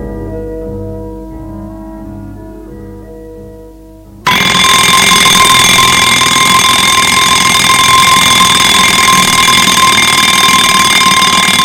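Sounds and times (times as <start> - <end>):
alarm clock with shrill metallic bell ringing: 4.3 - 11.6.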